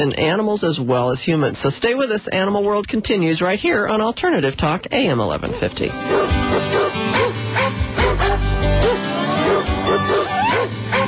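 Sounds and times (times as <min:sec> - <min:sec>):
speech: 0:00.0 - 0:06.8
several dogs barking and yipping: 0:04.7 - 0:11.0.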